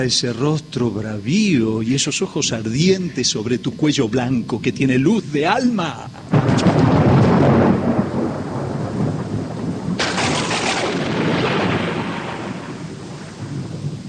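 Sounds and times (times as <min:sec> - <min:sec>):
speech: 0:00.0 - 0:07.0
heavy rain in a storm at night: 0:00.0 - 0:14.0
rushing wind in a storm at night: 0:05.1 - 0:14.0
loud rumbling cracks of thunder: 0:06.1 - 0:14.0.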